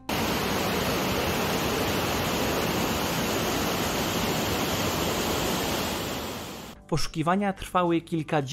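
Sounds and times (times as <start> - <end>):
waterfall roaring: 0.0 - 6.8
speech: 6.9 - 8.5.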